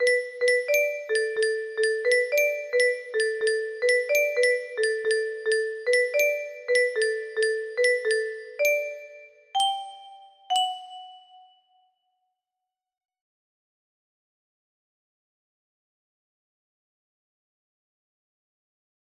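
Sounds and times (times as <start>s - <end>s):
music box melody: 0.0s - 11.7s.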